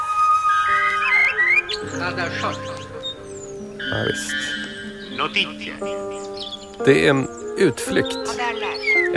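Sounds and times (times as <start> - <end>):
bellbird chirps: 0.1 - 9.1
bellbirds calling from tall treetops at dawn: 0.7 - 9.1
speech: 2.1 - 2.8, 3.9 - 9.1.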